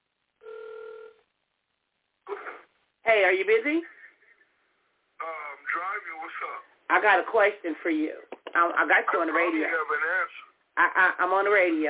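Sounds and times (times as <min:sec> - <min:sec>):
ringing tone over a phone line: 0:00.4 - 0:01.2
speech: 0:03.1 - 0:04.0, 0:06.4 - 0:11.8.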